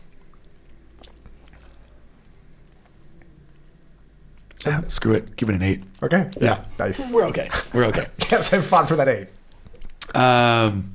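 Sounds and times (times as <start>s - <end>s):
person sipping a drink with wet slurps and clicks: 0.0s - 4.6s
speech: 4.6s - 9.4s, 10.2s - 10.9s.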